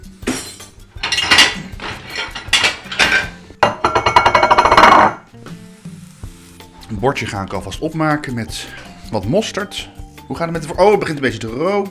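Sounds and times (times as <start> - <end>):
ceramic plates clinking as one is taken from a stack while cooking: 1.0 - 5.2
speech: 7.0 - 11.9.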